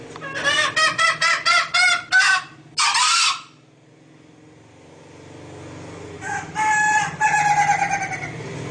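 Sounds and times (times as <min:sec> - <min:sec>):
female green junglefowl clucking and squawking: 0:00.2 - 0:03.6, 0:06.2 - 0:08.4.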